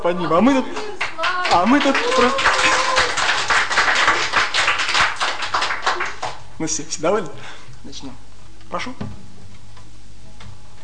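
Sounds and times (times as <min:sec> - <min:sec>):
speech: 0:00.0 - 0:02.7, 0:06.6 - 0:09.3
audience clapping: 0:00.6 - 0:06.5.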